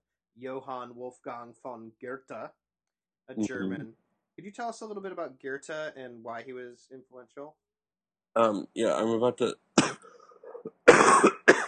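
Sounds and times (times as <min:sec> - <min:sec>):
speech: 0:00.4 - 0:02.6, 0:03.3 - 0:07.6, 0:08.4 - 0:11.3
person coughing: 0:09.8 - 0:10.2, 0:10.8 - 0:11.6.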